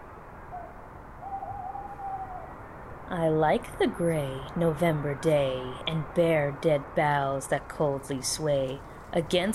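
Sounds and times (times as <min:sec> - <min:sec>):
owl hooting softly in a low drawn-out call: 0:00.5 - 0:02.6
speech: 0:03.1 - 0:09.5.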